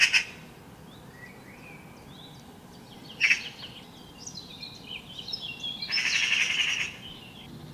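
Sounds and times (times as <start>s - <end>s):
Eurasian magpie Pica pica making rough grating calls: 0.0s - 0.4s, 3.2s - 3.5s, 5.9s - 7.0s
other birds whistling varied songs: 0.0s - 7.7s.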